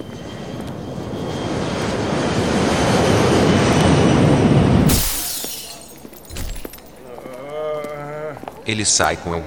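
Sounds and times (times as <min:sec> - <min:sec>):
airplane engine roar: 0:00.1 - 0:04.8
speech: 0:08.7 - 0:09.4.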